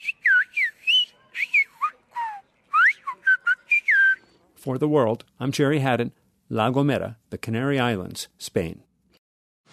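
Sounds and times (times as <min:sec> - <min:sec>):
whistled language whistles for long-distance communication on La Gomera: 0:00.0 - 0:04.4
speech: 0:04.7 - 0:08.9.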